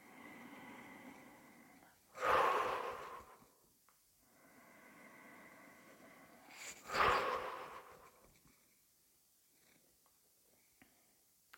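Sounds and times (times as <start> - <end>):
lip-trill exhales during a breathing exercise: 0.0 - 3.6, 4.3 - 8.2
soft breathing: 0.0 - 8.7.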